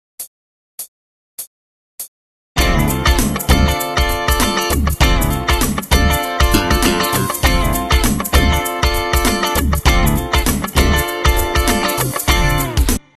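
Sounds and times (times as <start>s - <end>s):
funk guitar: 2.6s - 13.1s.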